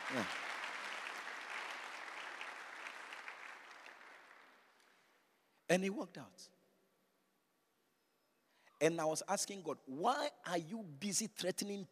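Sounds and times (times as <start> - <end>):
audience clapping: 0.0 - 5.1
speech: 0.1 - 0.4, 5.7 - 6.6, 8.8 - 11.8.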